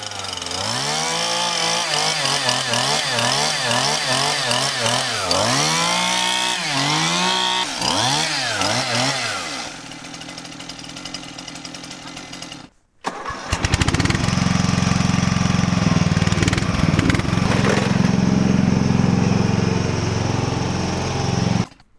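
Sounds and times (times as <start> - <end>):
Stihl MS171 chainsaw engine revving: 0.0 - 21.8
ride-on lawn mower engine cranking and running: 0.0 - 21.8.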